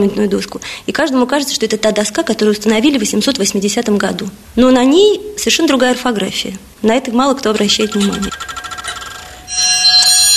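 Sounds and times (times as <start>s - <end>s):
speech: 0.0s - 8.6s
antique clock chiming: 9.2s - 10.3s.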